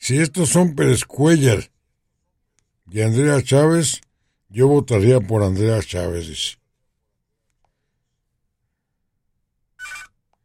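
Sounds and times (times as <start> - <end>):
speech: 0.1 - 1.7, 2.9 - 6.6
telephone ringing for an incoming call: 9.8 - 10.2.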